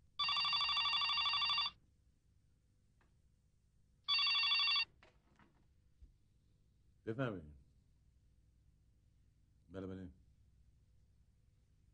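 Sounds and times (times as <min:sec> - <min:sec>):
telephone ringing with an electronic trill: 0:00.2 - 0:01.8, 0:04.1 - 0:05.0
speech: 0:07.1 - 0:07.6, 0:09.7 - 0:10.2.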